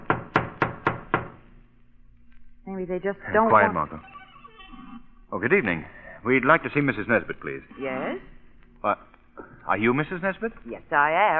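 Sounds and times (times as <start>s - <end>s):
firm knocks on a wooden door: 0.0s - 1.4s
speech: 2.8s - 4.1s, 5.3s - 11.3s.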